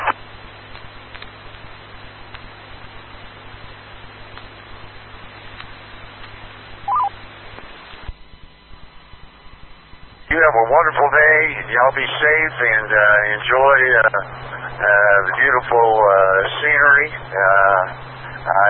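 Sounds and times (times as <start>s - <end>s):
radio hiss: 0.0s - 18.6s
DTMF touch-tone beeps sent to return a radio repeater to normal operation: 6.9s - 7.1s
speech: 10.4s - 18.6s.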